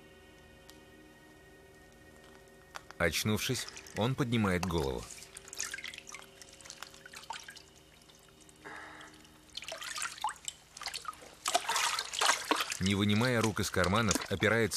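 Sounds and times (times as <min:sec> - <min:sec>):
speech: 0:03.0 - 0:05.2, 0:12.9 - 0:14.7
sandy mud dripping and splattering off a soaked man: 0:03.4 - 0:14.7
sloshing: 0:03.4 - 0:14.7.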